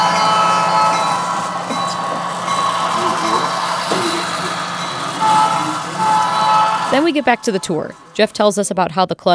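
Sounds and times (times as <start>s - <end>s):
model train rumbling past: 0.0s - 8.9s
faint voices murmuring: 1.0s - 8.2s
speech: 7.0s - 9.3s.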